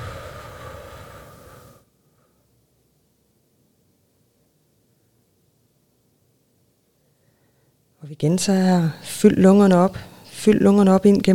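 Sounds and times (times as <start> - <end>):
long slow exhale through the mouth: 0.0 - 2.5
speech: 8.0 - 11.3.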